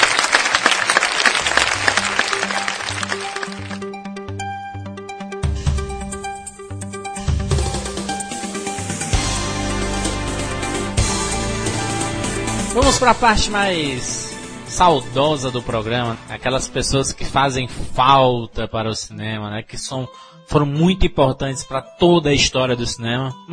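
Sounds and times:
clapping applause: 0.0 - 4.0
tonal music: 1.3 - 17.7
speech: 12.9 - 14.2, 14.8 - 23.5.

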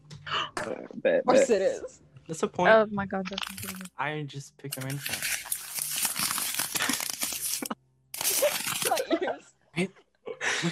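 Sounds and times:
speech: 0.3 - 5.4, 9.8 - 10.0
loud crinkly crunching: 3.4 - 3.9, 4.7 - 9.0
person laughing: 6.7 - 9.4.

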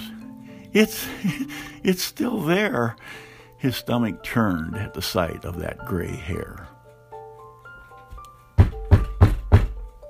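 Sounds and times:
speech: 0.7 - 6.7
knocking on a solid wooden front door: 8.6 - 9.9.

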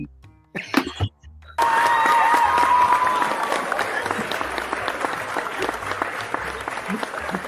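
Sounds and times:
canned studio-audience applause: 1.6 - 7.4
canned studio-audience laughter: 3.3 - 7.4.

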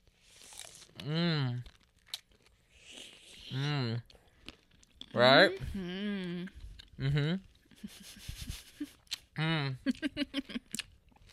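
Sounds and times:
person chewing food with crunchy bites: 0.1 - 5.2, 6.5 - 8.0, 8.8 - 11.3
speech: 1.0 - 1.7, 5.2 - 6.1, 7.0 - 8.3.

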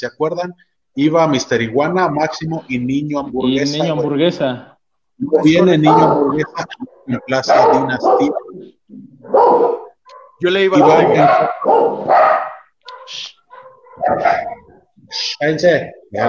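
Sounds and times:
speech: 0.0 - 9.8, 10.4 - 12.4, 13.1 - 13.3, 14.0 - 14.5, 15.1 - 16.2
dogs barking: 1.1 - 2.7, 5.2 - 15.1.

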